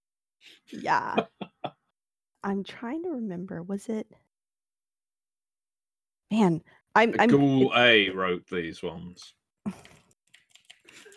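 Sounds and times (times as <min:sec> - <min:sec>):
speech: 0:00.7 - 0:01.4, 0:02.4 - 0:04.2, 0:06.3 - 0:10.0
laughter: 0:00.8 - 0:01.7, 0:07.2 - 0:08.7
fingers typing on a computer keyboard: 0:09.8 - 0:11.1.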